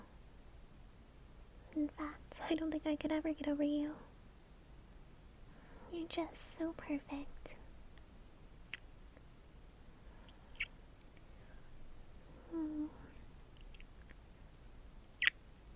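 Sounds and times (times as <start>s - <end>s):
speech: 1.9s - 4.1s, 5.9s - 7.6s
soft wet kissing sounds from someone sitting on a partner's lap: 8.7s - 8.9s, 10.3s - 11.3s, 15.2s - 15.4s.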